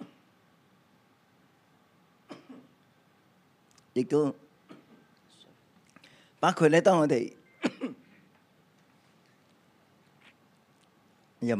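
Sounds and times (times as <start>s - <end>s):
person coughing after swallowing saliva the wrong way: 2.3s - 2.7s, 7.6s - 8.2s
speech: 4.0s - 4.4s, 6.4s - 7.4s.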